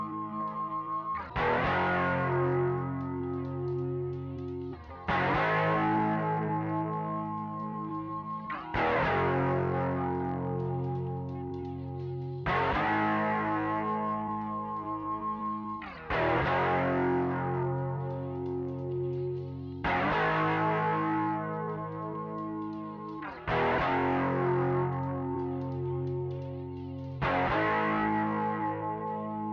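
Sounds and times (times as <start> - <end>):
guitar coda chords: 0.0 - 29.5.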